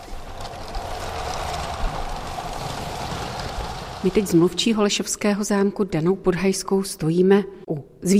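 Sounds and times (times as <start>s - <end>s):
Lego TGV toy train running on its track at an exhibition display: 0.0s - 4.7s
speech: 4.0s - 8.1s.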